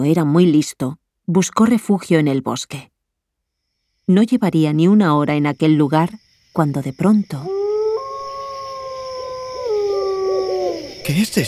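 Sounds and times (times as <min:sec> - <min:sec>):
speech: 0:00.0 - 0:02.9, 0:04.1 - 0:07.6, 0:11.1 - 0:11.4
wolves howling: 0:07.4 - 0:11.1.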